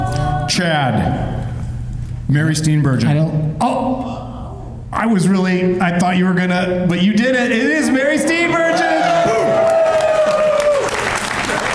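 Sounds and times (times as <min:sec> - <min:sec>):
speech: 0:00.6 - 0:01.4, 0:02.3 - 0:04.2, 0:04.9 - 0:09.7
audience applause: 0:08.8 - 0:11.7.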